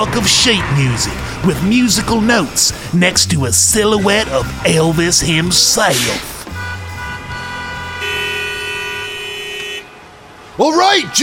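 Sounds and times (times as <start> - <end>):
speech: 0.0 - 6.3, 10.6 - 11.2
several car horns honking: 0.0 - 11.2
traffic rumble: 0.0 - 11.2.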